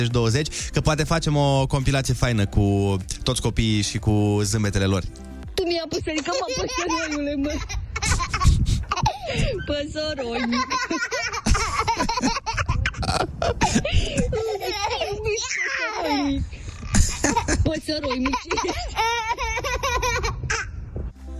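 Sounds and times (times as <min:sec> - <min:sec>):
speech: 0:00.0 - 0:07.8, 0:09.3 - 0:16.6, 0:17.3 - 0:19.8
laughter: 0:06.1 - 0:20.4
baby babbling and squealing: 0:15.4 - 0:16.4.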